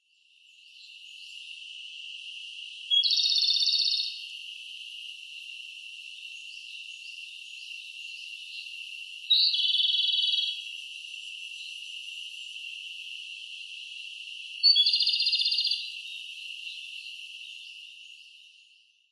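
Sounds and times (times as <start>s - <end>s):
Japanese robin calling: 2.9s - 4.2s, 9.3s - 10.6s, 14.6s - 15.9s.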